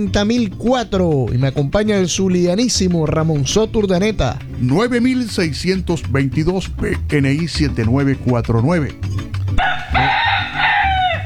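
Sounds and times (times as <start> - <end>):
speech: 0.0 - 10.1
rooster crowing: 9.6 - 11.2.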